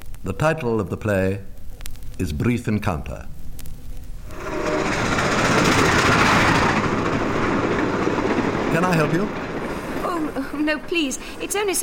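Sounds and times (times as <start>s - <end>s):
speech: 0.2s - 1.5s, 2.2s - 3.4s, 8.8s - 9.4s, 10.6s - 11.8s
train rumbling at a railway station in the English provinces: 4.2s - 11.8s
rattling clatter of train wheels and carriages: 4.3s - 11.8s.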